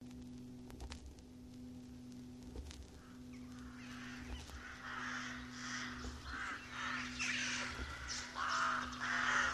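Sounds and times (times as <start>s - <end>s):
steady low hum: 0.0s - 9.5s
rooks cawing in a colony: 2.9s - 9.5s.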